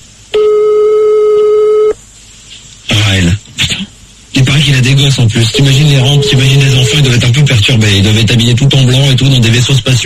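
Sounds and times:
telephone ringing tone while calling someone's home: 0.4 - 2.0, 5.5 - 7.2
speech: 4.7 - 10.0.

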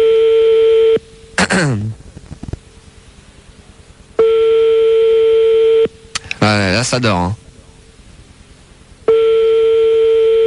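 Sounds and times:
telephone ringing tone during a phone call: 0.0 - 1.0, 4.2 - 5.9, 9.1 - 10.4
speech: 6.8 - 7.4.

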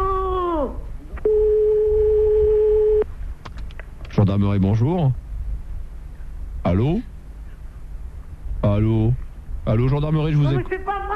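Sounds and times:
telephone ringing tone: 1.2 - 3.0
speech: 4.3 - 5.2, 6.7 - 7.1, 8.7 - 11.1.

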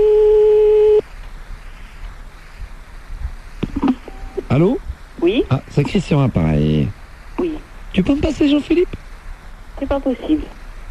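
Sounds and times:
telephone line tone while redialing a number: 0.0 - 1.0, 3.8 - 4.5
low noise: 0.0 - 10.8
speech: 4.6 - 7.0, 8.0 - 9.0, 9.8 - 10.6.

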